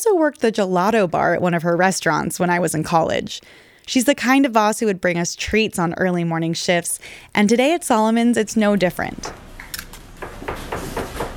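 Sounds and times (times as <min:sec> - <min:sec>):
speech: 0:00.0 - 0:09.4
low busy kitchen hum: 0:02.3 - 0:11.3
knife chopping vegetables on a cutting board in a deli kitchen: 0:10.2 - 0:11.3.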